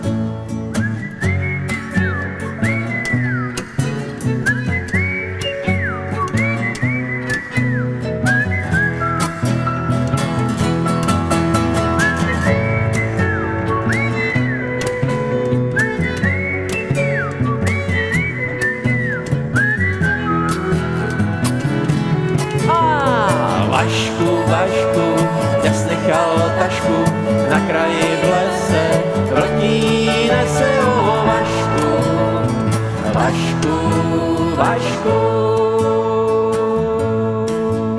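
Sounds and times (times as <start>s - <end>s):
several people whistling a bouncy tune: 0.0s - 37.9s.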